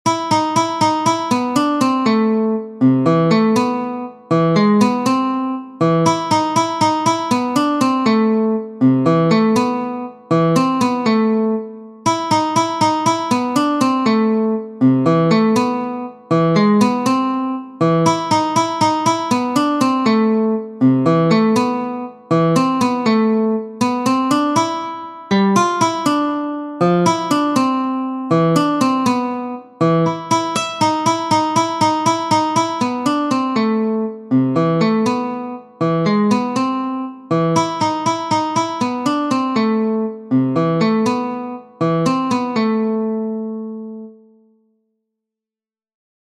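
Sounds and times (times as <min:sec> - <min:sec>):
guitar: 0:00.0 - 0:44.7.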